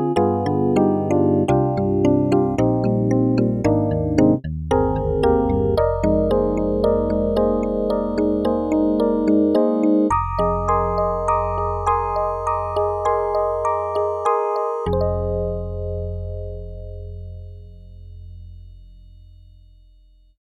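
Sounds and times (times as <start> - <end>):
percussive piano: 0.2 - 17.7.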